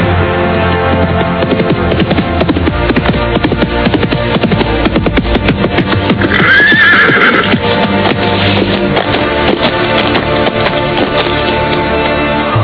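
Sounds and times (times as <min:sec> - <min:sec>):
clip-clop hoofbeats: 0:00.1 - 0:12.5
horse neighing while being ridden: 0:06.1 - 0:07.7.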